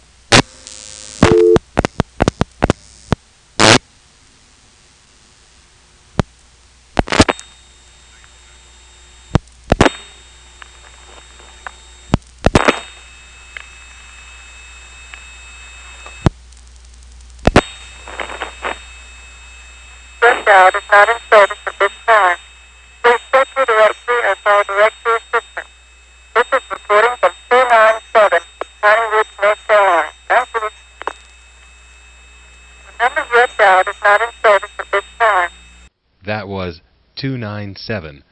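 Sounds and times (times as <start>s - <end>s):
steady electronic tones on analog controlled-carrier telephone trunk lines: 0.4s - 1.6s, 7.1s - 16.3s, 17.5s - 35.9s
sharp clicks and pops on analog controlled-carrier telephone trunk lines: 1.2s - 3.2s, 7.0s - 7.5s, 11.5s - 12.8s, 16.2s - 18.7s, 31.0s - 31.7s
speech: 20.5s - 22.4s, 37.2s - 38.2s.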